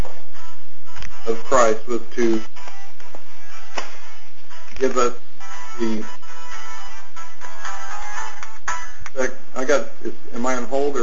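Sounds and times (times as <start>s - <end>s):
cell phone ringtone with bright electronic melody: 0.4s - 9.0s
speech: 1.2s - 2.5s, 4.8s - 5.2s, 5.8s - 6.2s, 9.2s - 11.0s.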